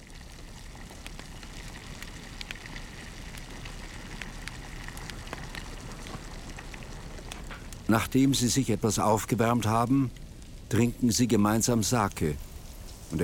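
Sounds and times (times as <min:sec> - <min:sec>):
open fire crackling inside a mountain cave: 0:00.0 - 0:13.2
speech: 0:07.9 - 0:12.5.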